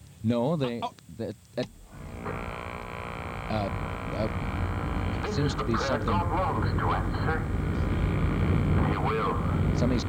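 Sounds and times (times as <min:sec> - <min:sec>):
speech: 0:00.2 - 0:02.4, 0:03.5 - 0:04.6, 0:05.4 - 0:07.9, 0:08.9 - 0:10.0
airplane engines roaring at an airport: 0:03.5 - 0:10.0.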